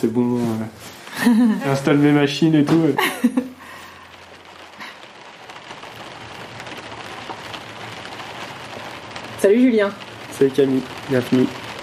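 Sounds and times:
speech: 0:00.0 - 0:03.5, 0:09.4 - 0:11.5
steady rain pattering on a surface: 0:00.0 - 0:11.8
laughter: 0:01.2 - 0:01.7, 0:03.0 - 0:03.6.

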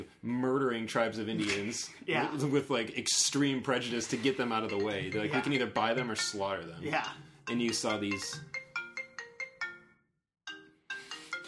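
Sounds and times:
speech: 0:00.0 - 0:08.6
phone ringtone with a bright repeating melodic pattern: 0:04.5 - 0:11.4.

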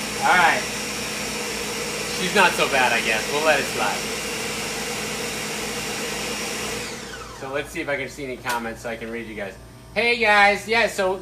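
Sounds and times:
blender running: 0:00.0 - 0:07.9
speech: 0:02.2 - 0:04.2, 0:07.5 - 0:11.2.

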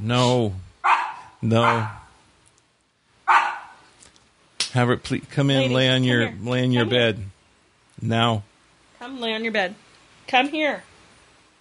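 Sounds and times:
speech: 0:00.0 - 0:00.6, 0:01.4 - 0:02.0, 0:04.7 - 0:07.3, 0:08.0 - 0:10.9
dog barking at something: 0:00.8 - 0:02.2, 0:03.3 - 0:03.9.

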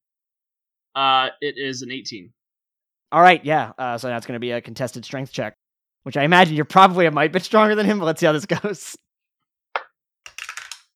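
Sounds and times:
speech: 0:01.0 - 0:02.4, 0:03.1 - 0:09.0
dice tumbling across a hard table: 0:10.3 - 0:10.9.

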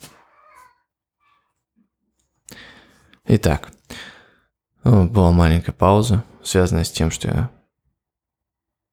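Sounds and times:
cat meowing plaintively: 0:00.0 - 0:01.4
speech: 0:03.3 - 0:03.8, 0:04.8 - 0:07.6.

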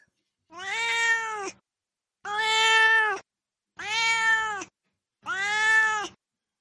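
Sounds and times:
cat meowing: 0:00.5 - 0:01.6, 0:02.2 - 0:03.2, 0:03.8 - 0:06.2.

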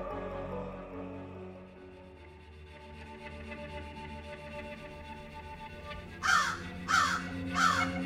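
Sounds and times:
crow cawing: 0:06.2 - 0:08.0.

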